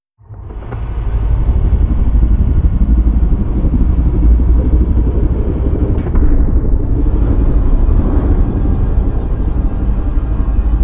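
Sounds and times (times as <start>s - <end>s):
reptilian colossus closing: 0.8s - 10.7s.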